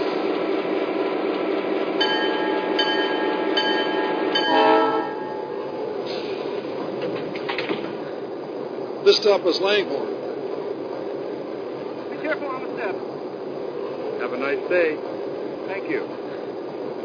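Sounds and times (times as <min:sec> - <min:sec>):
passenger train rumbling on track at station platform: 0:00.0 - 0:17.0
speech: 0:09.2 - 0:10.2, 0:14.4 - 0:15.1, 0:15.9 - 0:16.2.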